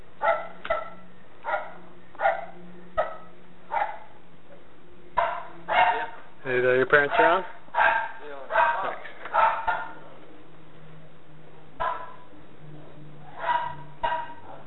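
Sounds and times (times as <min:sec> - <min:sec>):
low steady hum: 0:00.0 - 0:14.6
dog barking: 0:00.2 - 0:04.2, 0:05.2 - 0:06.2, 0:07.0 - 0:10.0, 0:11.8 - 0:12.3, 0:13.3 - 0:14.6
speech: 0:06.6 - 0:07.6.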